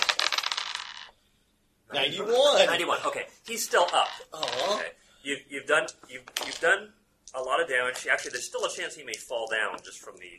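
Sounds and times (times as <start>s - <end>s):
percentage dice tumbling across a hard surface: 0.0s - 1.1s, 3.8s - 4.8s, 6.3s - 6.6s
speech: 2.0s - 10.3s.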